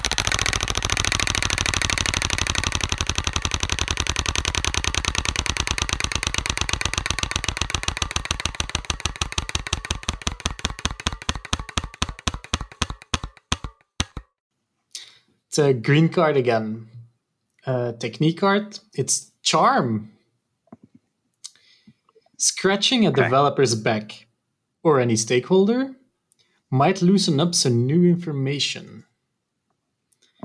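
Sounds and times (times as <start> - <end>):
prize wheel spinning and clicking during a team card game: 0.0 - 14.3
speech: 15.6 - 16.9, 17.6 - 20.2, 22.6 - 26.0, 26.7 - 29.1.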